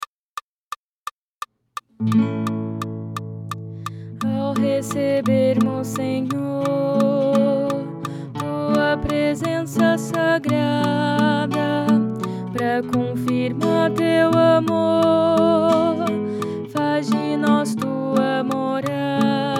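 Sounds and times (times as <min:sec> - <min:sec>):
contralto singing: 0:04.2 - 0:19.5.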